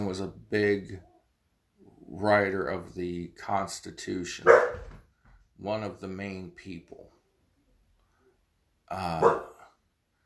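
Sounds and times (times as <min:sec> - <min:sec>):
speech: 0:00.1 - 0:01.1, 0:02.1 - 0:04.9, 0:05.6 - 0:07.2, 0:08.9 - 0:09.5
dog barking at someone outside: 0:04.4 - 0:04.9, 0:09.2 - 0:09.6.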